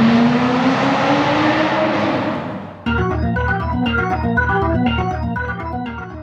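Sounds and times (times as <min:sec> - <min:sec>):
car engine roaring as it accelerates hard: 0:00.0 - 0:04.0
rapid rhythmic chugging pulse: 0:02.9 - 0:06.2.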